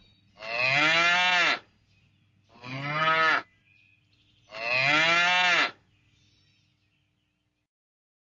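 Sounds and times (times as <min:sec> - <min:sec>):
cow mooing: 0:00.4 - 0:01.6, 0:02.6 - 0:03.5, 0:04.5 - 0:05.8.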